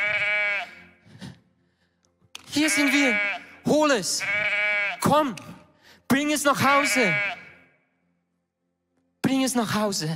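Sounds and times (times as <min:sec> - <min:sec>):
single loud wavering sheep bleat: 0:00.0 - 0:01.0, 0:02.5 - 0:05.2, 0:06.5 - 0:07.8
speech: 0:02.6 - 0:05.5, 0:06.1 - 0:07.4, 0:09.3 - 0:10.1.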